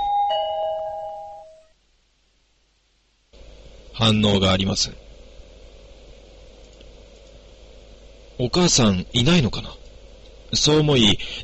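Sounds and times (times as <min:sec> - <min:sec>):
electronic doorbell chime at a house's front door: 0:00.0 - 0:01.7
speech: 0:04.0 - 0:05.0, 0:08.4 - 0:09.8, 0:10.5 - 0:11.4.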